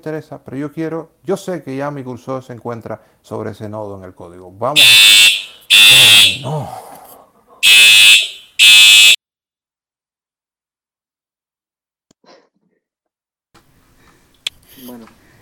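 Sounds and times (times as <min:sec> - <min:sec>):
speech: 0:00.0 - 0:05.2, 0:06.3 - 0:07.0, 0:14.8 - 0:15.2
harsh electronic alarm bursts: 0:04.8 - 0:06.5, 0:07.6 - 0:09.2.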